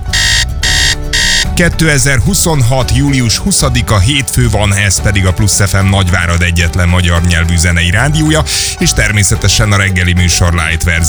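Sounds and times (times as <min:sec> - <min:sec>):
electronic alarm clock ringing: 0:00.1 - 0:01.5
speech: 0:01.6 - 0:11.0.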